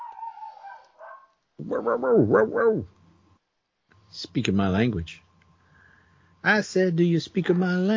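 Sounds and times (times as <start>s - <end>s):
dog barking: 0.0s - 2.9s, 7.4s - 7.9s
dog whine-like vocal sound: 0.0s - 2.9s
speech: 1.6s - 3.0s, 4.1s - 5.2s, 6.4s - 7.9s.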